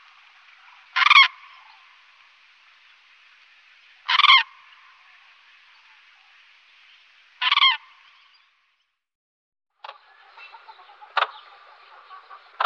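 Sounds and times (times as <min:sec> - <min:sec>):
common crane uttering loud rolling trumpeted calls: 0:00.8 - 0:02.0, 0:04.0 - 0:04.8, 0:07.4 - 0:08.0.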